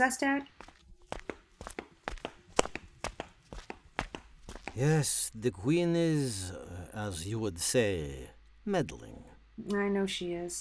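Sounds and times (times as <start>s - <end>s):
speech: 0.0s - 0.6s, 4.8s - 10.6s
footsteps of people walking in palace gardens: 0.4s - 5.3s.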